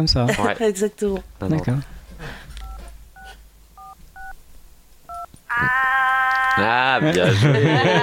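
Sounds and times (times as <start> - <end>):
speech: 0.0 - 2.4, 5.6 - 5.8, 6.6 - 8.0
telephone keypad dialing tones: 2.6 - 4.4
laughter: 5.5 - 8.0.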